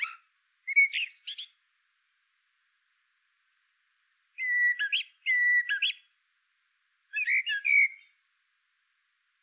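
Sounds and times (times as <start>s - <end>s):
Common blackbird Turdus merula song: 0.0s - 1.6s, 4.4s - 6.1s, 7.1s - 8.8s.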